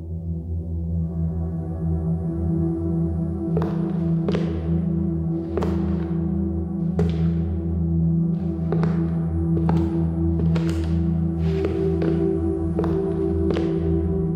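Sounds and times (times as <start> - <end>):
steady low hum: 1.0 - 14.3
slow heavy footsteps in a hallway at night: 3.4 - 14.3.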